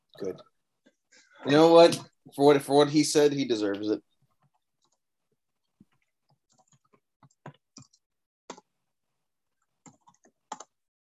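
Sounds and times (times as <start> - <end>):
speech: 0.2 - 0.5, 1.1 - 4.1
computer keyboard typing: 5.6 - 8.7, 9.5 - 10.8
computer mouse clicking: 5.6 - 8.7, 9.6 - 10.8.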